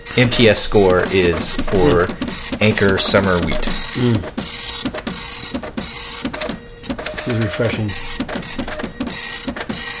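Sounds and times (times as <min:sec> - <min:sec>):
printer printing a page, mechanism chattering over a whirring hum: 0:00.0 - 0:09.9
speech: 0:00.2 - 0:04.6, 0:07.2 - 0:08.3.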